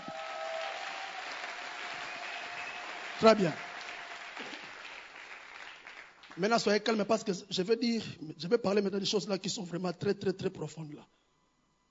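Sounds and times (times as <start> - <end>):
congregation applauding at a worship service: 0.0 - 6.8
speech: 3.2 - 3.6, 6.4 - 11.2.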